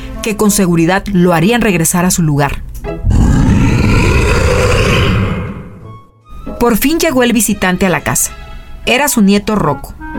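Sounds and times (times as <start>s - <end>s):
speech: 0.2s - 2.7s, 6.6s - 10.1s
human voice imitating a monster's growling roar: 3.0s - 6.0s.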